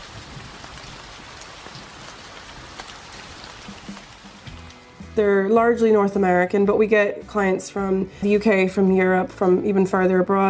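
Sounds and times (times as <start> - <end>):
rain pouring in Ireland: 0.0 - 5.2
speech: 5.2 - 10.4.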